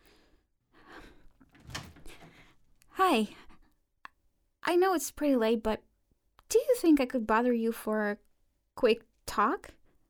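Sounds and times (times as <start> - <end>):
door opening with a soft creak: 1.4 - 2.4
brief sharp clunk of a door swinging wide: 1.5 - 2.5
speech: 3.0 - 3.4, 4.7 - 5.9, 6.5 - 9.8.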